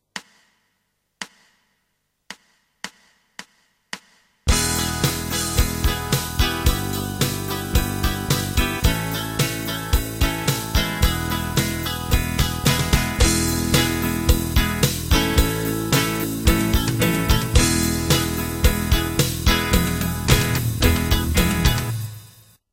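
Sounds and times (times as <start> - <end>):
guitar backing playing E crotchets: 4.5 - 22.3.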